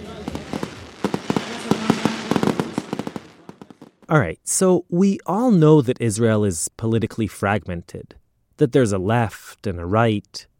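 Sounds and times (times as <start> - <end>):
fireworks popping and crackling: 0.0 - 4.1
speech: 4.1 - 10.5.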